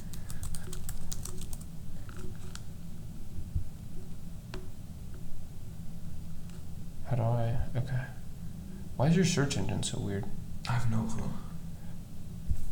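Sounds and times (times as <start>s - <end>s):
typing on a computer keyboard: 0.0s - 1.7s
steady low hum: 0.0s - 12.7s
speech: 9.0s - 11.5s.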